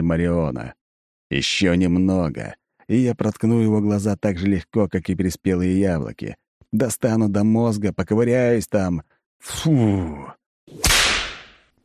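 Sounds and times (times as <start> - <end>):
speech: 0.1 - 11.0
shepherd's whip crack: 10.7 - 11.7.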